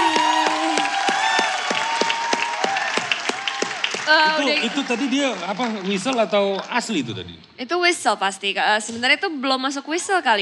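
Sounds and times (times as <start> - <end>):
audience applause for a young singer at a children's singing competition: 0.0 - 7.1
speech: 4.1 - 10.3.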